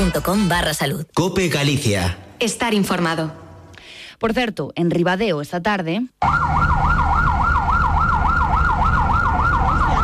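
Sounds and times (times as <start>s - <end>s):
speech: 0.0s - 3.4s, 4.2s - 6.8s
fire brigade engine siren wailing in a fast yelp: 6.2s - 10.0s.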